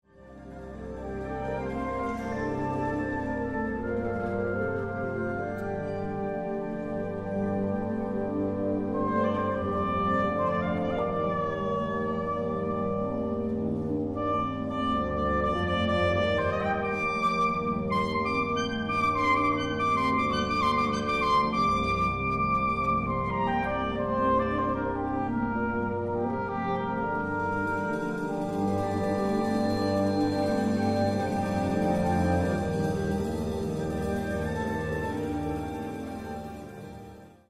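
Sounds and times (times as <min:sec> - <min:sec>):
orchestra playing: 0:00.2 - 0:37.4
soprano saxophone solo with orchestra: 0:08.4 - 0:36.4.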